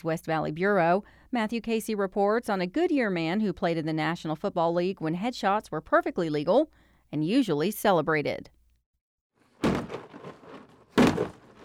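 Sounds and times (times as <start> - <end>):
speech: 0.0 - 8.6
sledgehammer striking a plastic shed: 9.5 - 11.6.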